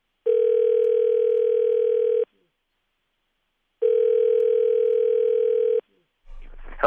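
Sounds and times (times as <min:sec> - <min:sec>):
telephone ring tones through a phone line: 0:00.2 - 0:02.3, 0:03.8 - 0:05.8.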